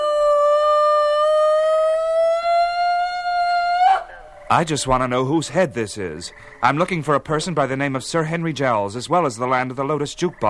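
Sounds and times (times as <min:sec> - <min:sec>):
woman screaming with a brassy trumpeting wail: 0:00.0 - 0:04.3
speech: 0:04.5 - 0:10.4.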